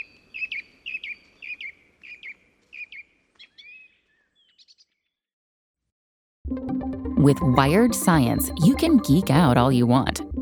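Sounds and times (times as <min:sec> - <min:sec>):
bird chirping: 0:00.0 - 0:05.2
speech: 0:06.6 - 0:10.3.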